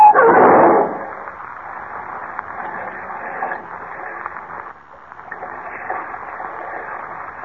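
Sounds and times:
car crashing through guardrail: 0.2 - 1.1.

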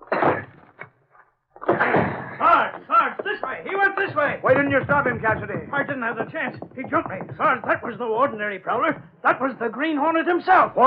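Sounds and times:
door being forced open with splintering bangs: 1.7 - 9.2
smaller knock: 1.7 - 9.6
speech: 3.6 - 10.8.

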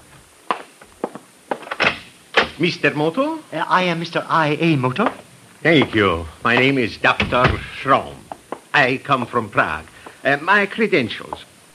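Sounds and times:
speech: 2.6 - 11.5
knocking at a room door: 6.6 - 8.6.

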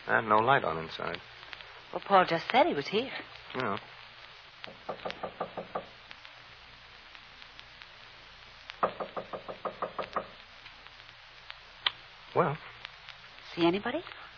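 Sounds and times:
speech: 0.1 - 1.3, 1.9 - 3.9, 12.4 - 12.7, 13.6 - 14.2
knocking on a door: 4.7 - 5.9, 8.8 - 10.4.

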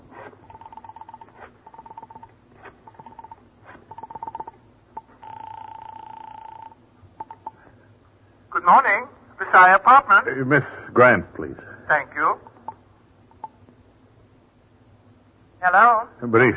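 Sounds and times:
telephone dialing tone bursts: 0.4 - 7.6
speech: 8.6 - 12.4, 16.2 - 16.5.

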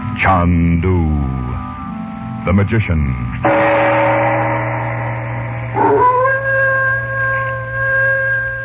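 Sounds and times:
speech: 0.2 - 1.6, 2.4 - 3.9
steady low hum: 3.4 - 8.6
dog howling mournfully in a dark village: 5.7 - 8.6.

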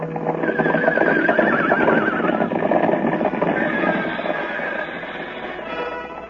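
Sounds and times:
horse galloping: 0.0 - 6.2.

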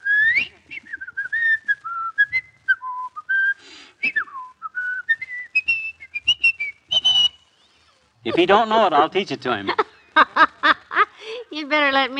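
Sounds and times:
person whistling a lively novelty tune: 0.0 - 7.4
laughter: 8.2 - 11.5
speech: 8.3 - 10.3, 11.7 - 12.1.

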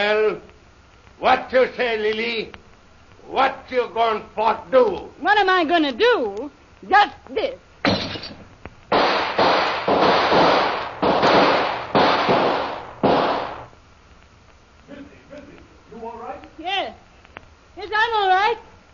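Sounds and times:
speech: 0.0 - 0.5, 1.2 - 2.6, 3.2 - 7.7
gunshots fired through a window: 7.8 - 13.7.

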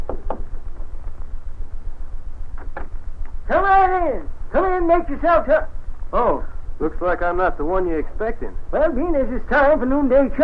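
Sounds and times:
knocking on the wooden door of a house: 0.0 - 0.5
low steady rumble: 0.0 - 10.4
speech: 3.5 - 10.4.

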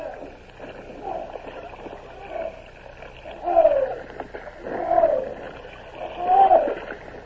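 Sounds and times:
oars pulling through river water as crews row barges and a bomb ketch: 0.0 - 7.2.

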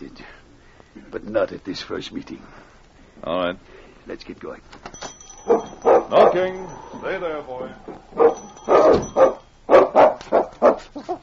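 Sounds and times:
speech: 1.1 - 9.4
dog barking insistently: 5.5 - 6.5, 8.2 - 11.0.

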